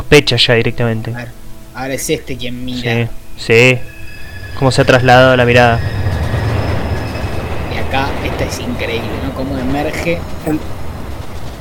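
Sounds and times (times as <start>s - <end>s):
speech: 0.1s - 3.9s, 4.6s - 6.0s, 7.9s - 10.8s
train rumbling while crossing a bridge: 1.1s - 11.5s
metallic squeal: 2.5s - 11.4s
rattling train wheels on a bridge: 3.6s - 11.5s.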